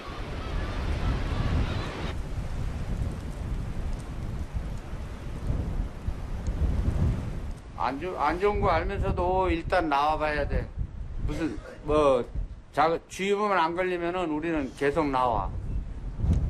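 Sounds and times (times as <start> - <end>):
heavy sea waves crashing at a harbor: 0.0 - 9.1
strong dawn wind roaring at a harbor: 0.0 - 16.4
speech: 7.8 - 15.6.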